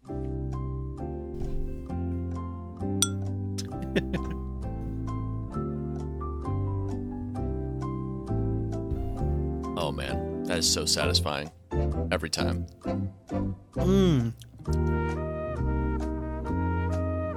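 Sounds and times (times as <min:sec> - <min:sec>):
music: 0:00.0 - 0:17.3
glasses clinking in a toast: 0:03.0 - 0:03.2
laughter: 0:03.6 - 0:04.4
speech: 0:04.0 - 0:04.3, 0:09.9 - 0:15.2.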